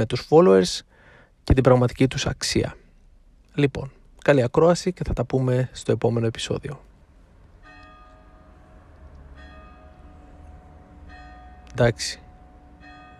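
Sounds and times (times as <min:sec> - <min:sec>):
speech: 0:00.0 - 0:02.8, 0:03.6 - 0:06.9, 0:11.8 - 0:12.2
church bells ringing: 0:07.6 - 0:13.1.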